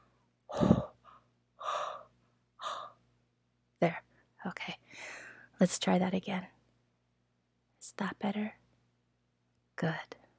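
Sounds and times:
breathy exhalations onto a cold stethoscope to warm it: 0.5 - 3.0
speech: 5.6 - 6.6, 8.0 - 8.6, 9.8 - 10.2.

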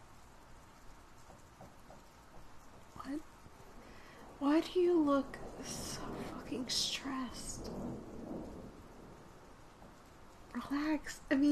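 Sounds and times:
steady rain during a thunderstorm: 0.0 - 11.4
low rolling rumble of thunder: 2.5 - 11.4
speech: 3.1 - 3.4, 4.4 - 8.2, 10.6 - 11.4.

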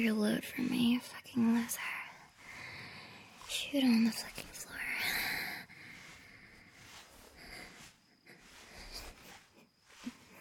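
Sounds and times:
speech: 0.0 - 2.0, 3.5 - 4.9
heavy wheezy breathing from exertion: 2.2 - 3.5, 5.0 - 10.3.

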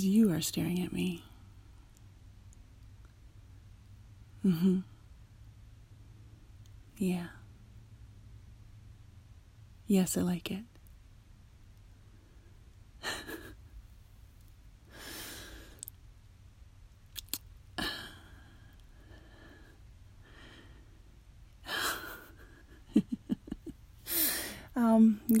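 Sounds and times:
speech: 0.0 - 1.3, 4.4 - 4.9, 7.0 - 7.4, 9.9 - 10.7, 24.8 - 25.3
heavy breathing close to the microphone: 17.8 - 21.0, 24.0 - 24.8.

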